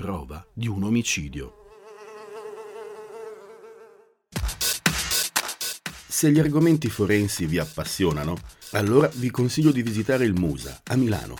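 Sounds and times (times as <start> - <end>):
speech: 0.1 - 1.6, 6.2 - 11.3
fly buzzing: 1.6 - 4.6.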